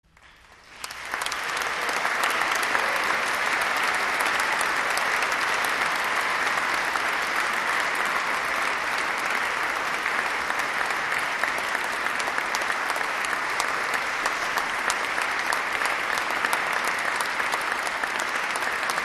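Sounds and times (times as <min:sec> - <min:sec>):
applause for chamber music: 0:00.0 - 0:19.0.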